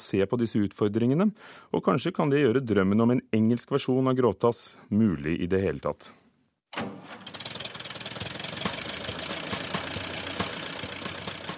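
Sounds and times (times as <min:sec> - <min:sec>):
speech: 0:00.0 - 0:06.2
small tractor engine in Norway starting and idling: 0:06.9 - 0:11.5.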